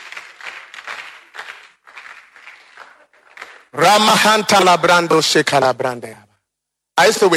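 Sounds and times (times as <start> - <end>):
audience clapping to give God praise: 0.0 - 3.8
speech: 3.8 - 6.3, 7.0 - 7.3.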